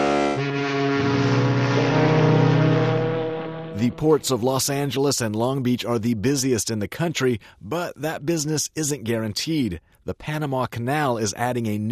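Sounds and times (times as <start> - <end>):
deep horn of a huge cargo ship in the Pacific off Southern California: 0.0 - 4.4
speech: 3.8 - 11.9.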